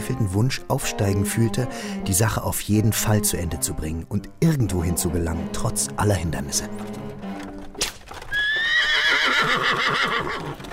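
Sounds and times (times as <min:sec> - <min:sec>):
speech: 0:00.1 - 0:07.0, 0:09.5 - 0:10.7
mare's trotting hooves clip-clopping: 0:05.2 - 0:10.7
sharp crack: 0:07.7 - 0:08.3
mare pulling a cart whinnying: 0:08.3 - 0:10.7.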